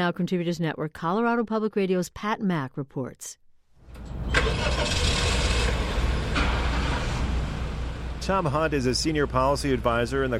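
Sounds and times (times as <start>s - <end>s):
speech: 0.0s - 5.0s, 8.3s - 10.3s
natural gas-powered Honda Civic engine starting: 3.8s - 9.9s.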